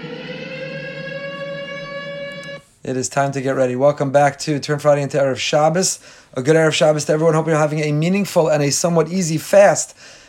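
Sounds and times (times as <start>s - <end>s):
Shabbos siren sounding on a Friday: 0.0s - 2.7s
speech: 2.8s - 10.2s.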